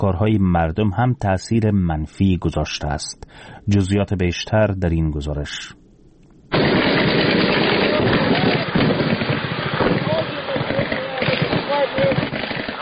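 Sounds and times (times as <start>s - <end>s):
speech: 0.0s - 5.8s
gunfire barrage from light and heavy weapons: 6.5s - 12.8s.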